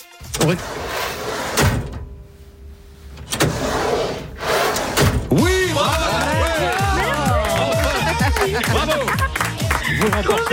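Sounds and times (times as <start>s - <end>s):
drawer sliding open and shut: 0.2s - 2.2s, 3.0s - 5.4s
speech: 0.4s - 1.0s, 10.0s - 10.5s
laughter: 5.5s - 10.5s.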